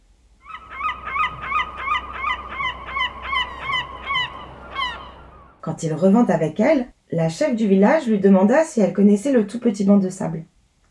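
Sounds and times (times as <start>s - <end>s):
soft rushing noise: 0.0s - 9.4s
seagull squawking: 0.4s - 5.6s
speech: 5.7s - 10.8s.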